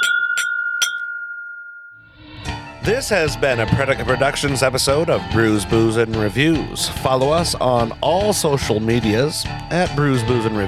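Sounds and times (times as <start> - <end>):
glasses clinking in a toast: 0.0 - 1.8
speech: 2.8 - 10.6.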